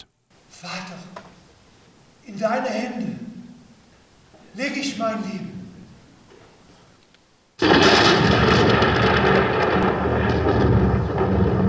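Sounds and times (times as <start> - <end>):
speech: 0.6 - 1.2, 2.3 - 3.2, 4.6 - 5.4
deep thunder rumbling in Schönberg: 7.6 - 11.6.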